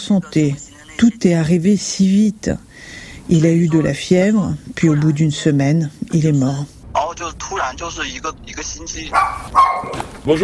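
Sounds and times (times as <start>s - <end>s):
speech: 0.1s - 10.4s
dog barking loudly and sharply: 9.1s - 10.0s.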